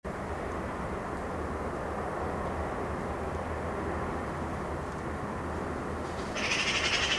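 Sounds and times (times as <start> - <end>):
steady low rumble: 0.1 - 7.1
Eurasian magpie Pica pica rattle: 6.2 - 7.1.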